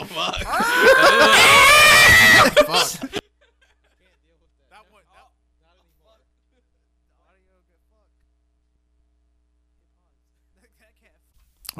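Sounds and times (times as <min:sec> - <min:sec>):
laughter: 0:00.0 - 0:04.6, 0:06.4 - 0:07.0
person letting out a guttural scream: 0:00.4 - 0:03.2.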